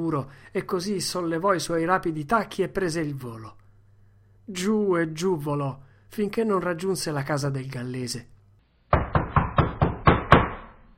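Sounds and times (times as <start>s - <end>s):
speech: 0.0s - 3.6s, 4.5s - 8.3s
loud knocking on a door: 8.9s - 10.8s.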